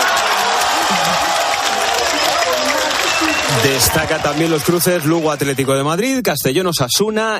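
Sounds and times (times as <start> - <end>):
football team cheering in its locker room after a cup draw: 0.0 - 5.8
football team clapping in its locker room: 0.0 - 6.2
speech: 3.5 - 7.3.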